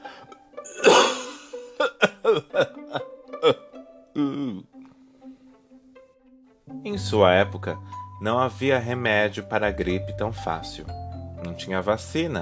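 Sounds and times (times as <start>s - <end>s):
rough voiced throat-clearing grunt: 0.7s - 2.7s, 3.4s - 3.6s, 4.2s - 4.7s
person coughing: 0.7s - 3.6s, 4.2s - 4.6s
speech: 2.2s - 3.6s, 7.0s - 12.4s.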